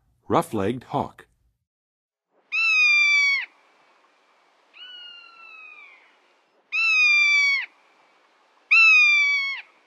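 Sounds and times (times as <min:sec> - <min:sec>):
Rough-legged Hawk calling: 0:02.5 - 0:03.6, 0:04.7 - 0:07.7, 0:08.7 - 0:09.7.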